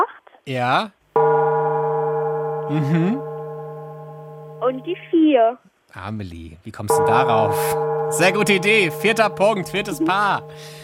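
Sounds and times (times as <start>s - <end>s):
speech: 0.5s - 1.3s, 2.7s - 3.3s, 4.6s - 10.8s
yoga gong strike with rich sustained metallic tone: 1.2s - 4.9s, 6.9s - 10.8s.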